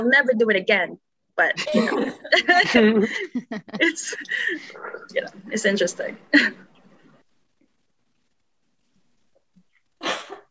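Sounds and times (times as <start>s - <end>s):
speech: 0.0s - 6.7s
sharp sneeze from a person with a cold: 10.0s - 10.5s.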